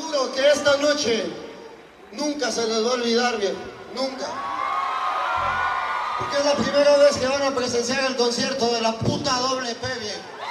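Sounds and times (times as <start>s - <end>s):
speech: 0.3s - 1.5s, 2.1s - 4.5s, 6.2s - 10.4s
roaring crowd of thousands cheering and chanting: 4.2s - 7.7s.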